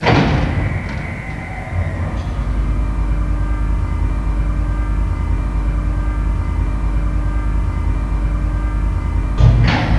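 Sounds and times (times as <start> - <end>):
lift running: 0.0 - 9.9.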